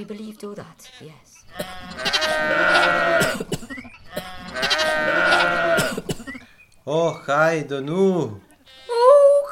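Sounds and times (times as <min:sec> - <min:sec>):
speech: 0:00.0 - 0:03.6, 0:06.9 - 0:08.5
sheep bleating: 0:00.7 - 0:03.4, 0:04.1 - 0:06.0, 0:08.4 - 0:09.3.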